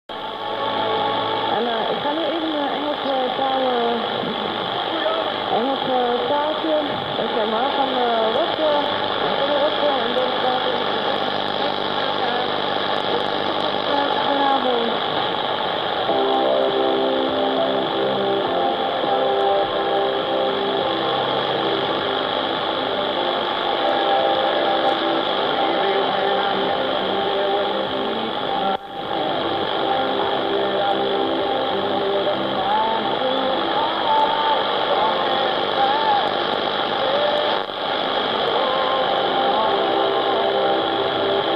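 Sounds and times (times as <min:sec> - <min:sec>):
pirate radio broadcast on 3930 kHz shortwave: 0:00.1 - 0:41.5.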